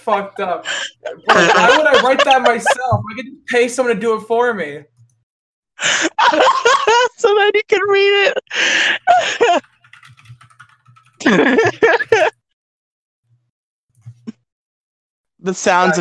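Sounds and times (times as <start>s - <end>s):
speech: 0.0s - 4.9s, 5.8s - 9.7s, 11.2s - 12.3s, 15.4s - 15.9s
laughter: 0.6s - 2.9s, 5.8s - 7.2s, 8.8s - 9.6s, 11.2s - 12.4s
typing on a computer keyboard: 9.4s - 12.3s.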